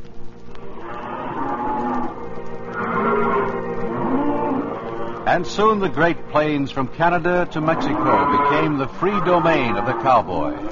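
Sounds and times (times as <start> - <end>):
cattle mooing: 0.8 - 5.4, 7.7 - 10.6
speech: 5.4 - 10.6.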